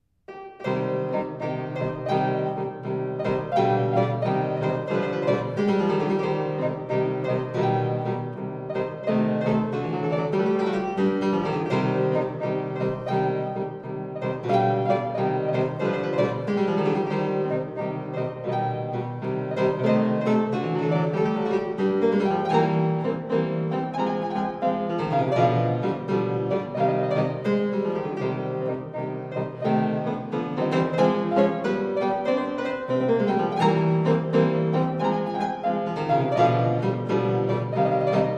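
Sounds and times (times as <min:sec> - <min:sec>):
solo fortepiano bagatelles: 0:00.0 - 0:38.3.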